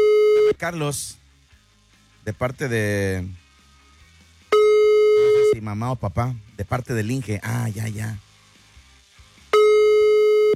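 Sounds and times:
steady telephone line tone while dialing a call: 0.0s - 0.6s, 4.6s - 5.6s, 9.6s - 10.5s
speech: 0.6s - 1.2s, 2.3s - 3.4s, 5.6s - 8.3s.

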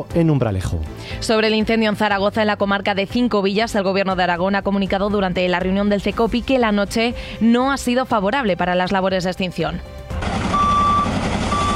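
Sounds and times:
speech: 0.0s - 10.0s
firefighting truck engine rumble: 10.2s - 11.7s
firefighting truck reversing beeps at a wildfire: 10.2s - 11.7s.

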